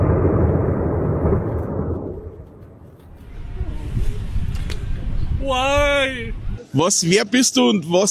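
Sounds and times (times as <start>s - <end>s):
tower collapsing during a demolition blast: 0.0s - 5.0s
speech: 5.5s - 6.2s, 6.8s - 8.0s.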